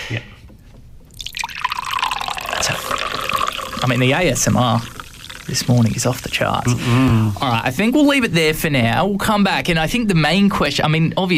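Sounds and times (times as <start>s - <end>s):
speech: 0.1s - 0.4s, 3.9s - 11.3s
soda poured into a glass: 1.1s - 7.5s
soda fizzing in a glass: 1.1s - 7.8s.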